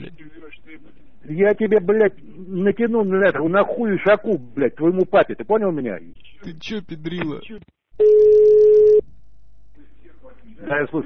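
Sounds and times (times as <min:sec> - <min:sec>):
speech: 0:01.3 - 0:08.6, 0:10.4 - 0:11.0
telephone busy tone after the other party hangs up: 0:08.0 - 0:09.0.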